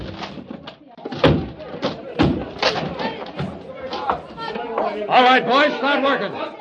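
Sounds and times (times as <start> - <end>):
door being broken down: 0.0 - 4.2
speech: 5.0 - 6.5.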